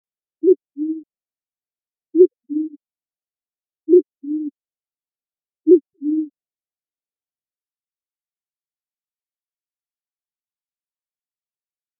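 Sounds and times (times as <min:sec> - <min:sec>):
band-tailed pigeon cooing: 0:00.4 - 0:01.1, 0:02.2 - 0:02.8, 0:03.9 - 0:04.5, 0:05.7 - 0:06.3.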